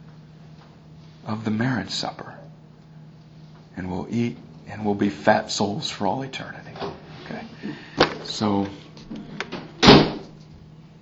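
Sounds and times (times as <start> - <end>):
speech: 1.2 - 2.4, 3.8 - 9.2
door slamming shut: 9.5 - 10.4.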